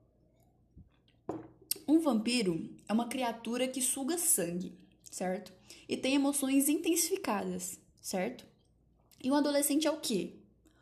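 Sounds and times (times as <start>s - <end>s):
soft thump: 1.3s - 1.6s
speech: 1.3s - 8.5s, 9.2s - 10.4s.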